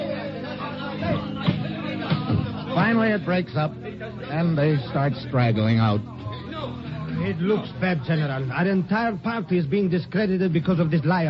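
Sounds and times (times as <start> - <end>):
crowd chatter at a stormy legislative session: 0.0 - 11.2
speech: 2.9 - 6.2, 7.2 - 11.2.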